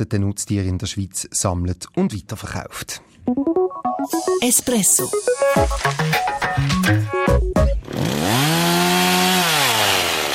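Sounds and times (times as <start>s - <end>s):
speech: 0.0s - 8.6s
stepped musical notes: 3.3s - 7.8s
chainsaw cutting winter timber: 7.8s - 10.3s.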